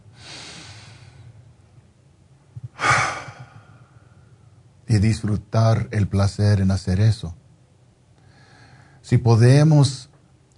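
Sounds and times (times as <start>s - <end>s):
slow deliberate deep breath: 0.1s - 1.4s, 2.6s - 4.4s, 8.2s - 9.0s
speech: 4.9s - 7.4s, 9.1s - 10.1s.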